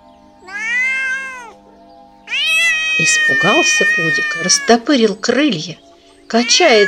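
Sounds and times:
ginger cat meowing: 0:00.4 - 0:01.6, 0:02.3 - 0:04.9, 0:06.3 - 0:06.8
speech: 0:03.0 - 0:06.8.

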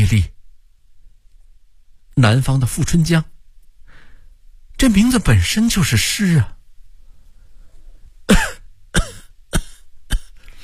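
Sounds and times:
speech: 0:00.1 - 0:00.3, 0:02.2 - 0:03.3, 0:04.8 - 0:06.6
sick patient coughing: 0:08.3 - 0:10.6.

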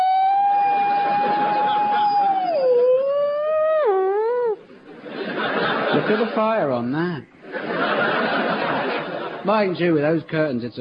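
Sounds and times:
person imitating a fire engine siren: 0:00.0 - 0:04.6
laughter: 0:00.6 - 0:06.7, 0:07.4 - 0:09.9
speech: 0:06.0 - 0:08.0, 0:09.4 - 0:10.7.

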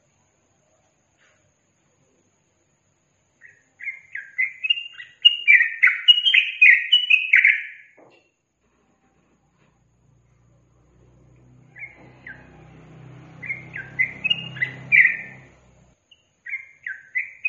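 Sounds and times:
yellow-vented bulbul singing: 0:03.4 - 0:08.0, 0:11.4 - 0:17.4
low hum: 0:08.6 - 0:16.1.

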